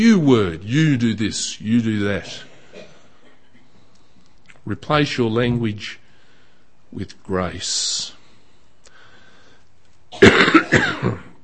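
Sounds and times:
speech: 0.0s - 2.5s, 4.7s - 6.0s, 6.9s - 8.2s
harsh raspy coughing: 2.2s - 3.7s, 10.1s - 11.4s.

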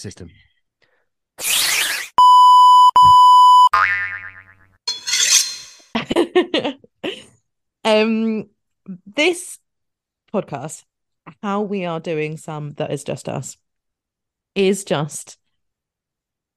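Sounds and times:
speech: 0.0s - 0.5s, 7.9s - 9.6s, 10.3s - 13.6s, 14.6s - 15.4s
loud steady censor bleep tone covering swearing: 2.2s - 3.7s.

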